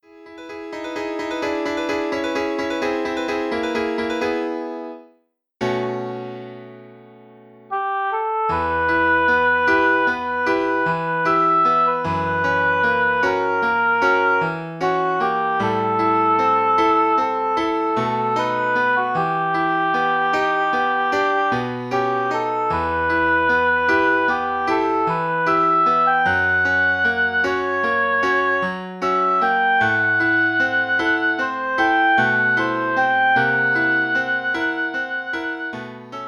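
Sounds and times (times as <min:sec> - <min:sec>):
piano accompanying oboe: 0:00.0 - 0:36.2
oboe playing a romance: 0:07.7 - 0:36.2.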